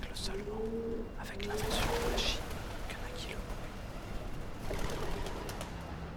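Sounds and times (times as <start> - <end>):
pigeons cooing: 0.0 - 6.1
rustling wingbeats of pigeons taking off: 1.4 - 6.1.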